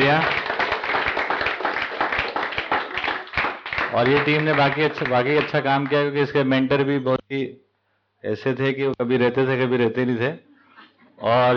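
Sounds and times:
applause for a team at a camp: 0.0 - 6.2
speech: 0.1 - 0.4, 3.9 - 7.6, 8.2 - 10.5, 11.2 - 11.5.

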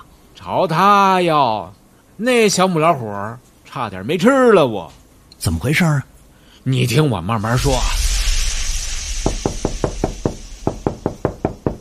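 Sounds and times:
faint steady hiss: 0.0 - 11.8
speech: 0.4 - 8.0
knocking on a door: 9.2 - 11.8.

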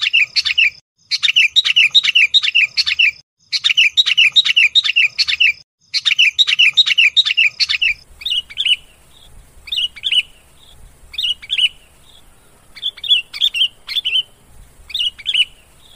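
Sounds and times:
lovebird lure calls used for trapping lovebirds: 0.0 - 15.9
low background rumble: 8.0 - 15.9.

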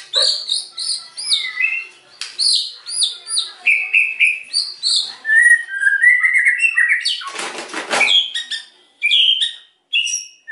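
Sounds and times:
white-rumped shama whistled fluty lure song: 0.1 - 7.4, 8.0 - 10.4.

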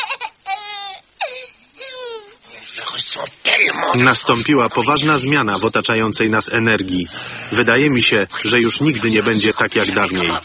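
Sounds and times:
baby crying: 0.0 - 2.5
speech: 3.0 - 10.4.

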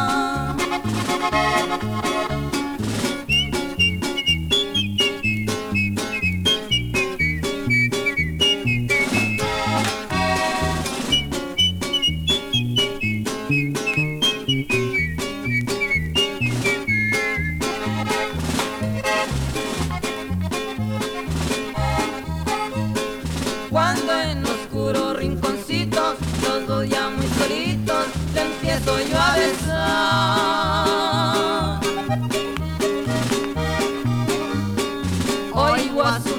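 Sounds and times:
dense band with a steady driving beat: 0.0 - 36.3
human whistling a gliding high melody: 3.1 - 19.5, 27.2 - 36.3.

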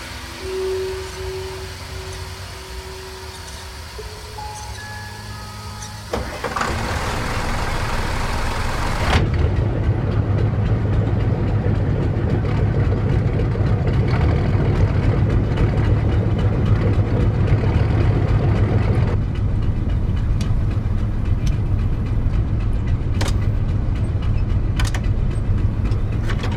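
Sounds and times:
boat motor starting and running: 0.0 - 26.5.

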